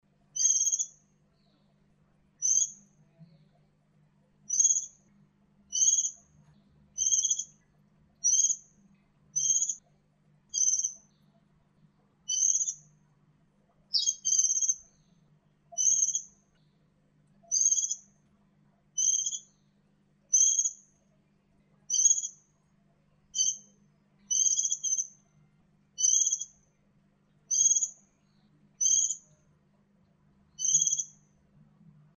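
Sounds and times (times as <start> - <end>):
female pleci Indonesian bird: 0.2 - 3.8, 4.4 - 13.0, 13.7 - 18.3, 18.9 - 22.6, 23.3 - 29.6, 30.5 - 31.4.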